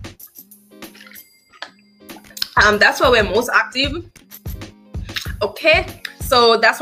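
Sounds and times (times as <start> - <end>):
person sipping water: 2.2 - 2.6, 5.0 - 5.4
speech: 2.6 - 4.2, 5.4 - 6.7.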